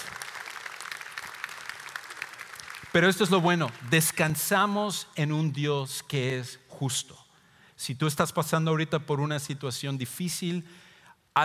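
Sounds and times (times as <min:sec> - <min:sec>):
audience applauding with many hands clapping: 0:00.0 - 0:04.3
speech: 0:03.0 - 0:07.2, 0:07.8 - 0:10.8.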